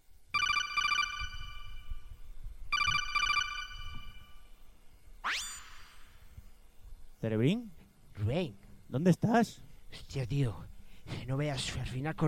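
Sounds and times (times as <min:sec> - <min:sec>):
low noise: 0:00.0 - 0:12.2
telephone ringing on a recorded phone call: 0:00.3 - 0:02.0, 0:02.7 - 0:04.4
speech: 0:07.2 - 0:12.2.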